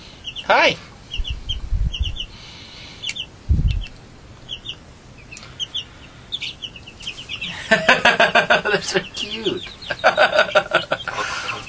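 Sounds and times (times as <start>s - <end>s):
young chickens clucking and peeping: 0.0s - 11.6s
speech: 0.5s - 0.9s, 8.7s - 11.0s
low thumps: 1.2s - 2.3s, 3.4s - 4.0s
laughter: 7.4s - 11.6s.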